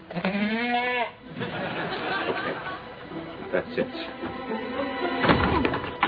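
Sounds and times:
goat bleating: 0:00.0 - 0:01.2
laughter: 0:01.3 - 0:05.2
speech: 0:03.6 - 0:04.6.

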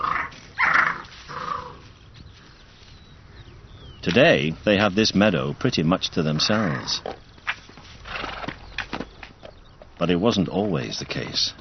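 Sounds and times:
red fox cubs growling and snarling: 0:00.0 - 0:04.0, 0:06.0 - 0:10.0
speech: 0:04.1 - 0:07.2, 0:10.0 - 0:11.6.

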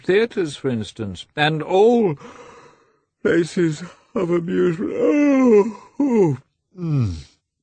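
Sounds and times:
speech: 0:00.0 - 0:02.5, 0:03.2 - 0:07.3
voice imitating a yawn: 0:04.8 - 0:07.4.

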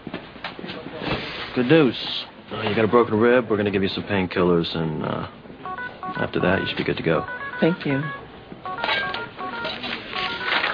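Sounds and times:
speech: 0:01.6 - 0:05.4, 0:06.1 - 0:08.2
phone ringing with warbling electronic tones: 0:05.6 - 0:10.7.

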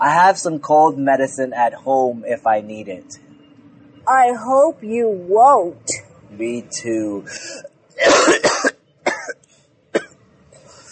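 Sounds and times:
speech: 0:00.0 - 0:03.3, 0:04.1 - 0:08.5
person with a dry throat coughing: 0:07.4 - 0:09.4.

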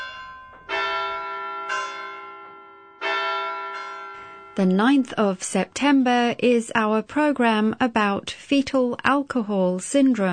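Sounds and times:
bells ringing: 0:00.0 - 0:05.4
speech: 0:04.6 - 0:10.3.

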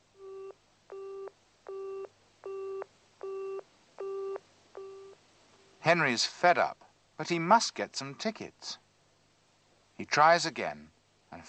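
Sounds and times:
telephone busy signal after dialing a wrong number: 0:00.2 - 0:05.2
speech: 0:05.8 - 0:08.8, 0:10.0 - 0:11.4.

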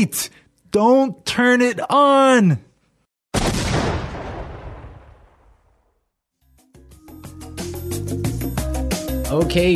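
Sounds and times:
speech: 0:00.0 - 0:02.7, 0:09.3 - 0:09.7
loud explosion sound effect: 0:03.4 - 0:06.1.

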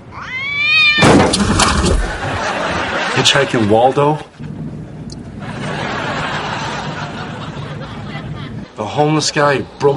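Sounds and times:
cat yowling: 0:00.0 - 0:01.2
laughter: 0:01.9 - 0:04.2, 0:05.4 - 0:08.8
speech: 0:03.2 - 0:04.5, 0:08.8 - 0:09.9.

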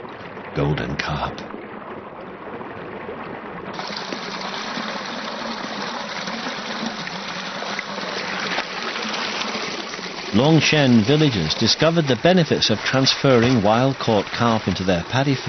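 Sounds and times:
water draining out of a rice paddy stocked with golden carp in Longshen: 0:00.0 - 0:15.4
speech: 0:00.6 - 0:01.6, 0:10.3 - 0:15.4.

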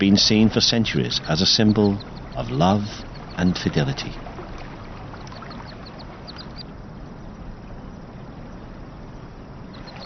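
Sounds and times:
speech: 0:00.0 - 0:04.3
constant rushing wash: 0:00.0 - 0:10.0
mandarin ducks calling in a park: 0:01.1 - 0:06.7.

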